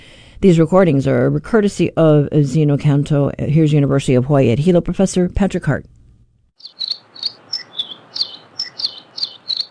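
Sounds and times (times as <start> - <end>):
speech: 0.4 - 5.9
Nihoa finch singing high chirping notes: 6.6 - 9.6.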